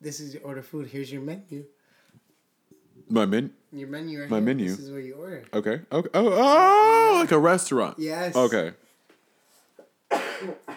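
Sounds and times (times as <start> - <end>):
speech: 0.0 - 1.8, 3.1 - 8.8, 10.4 - 10.7
man coughing: 10.1 - 10.7.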